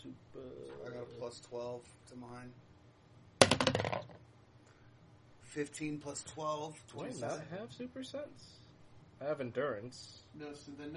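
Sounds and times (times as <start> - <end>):
speech: 1.3 - 2.7, 5.5 - 8.6, 9.2 - 10.9
dice clattering on a hard table: 3.4 - 4.2.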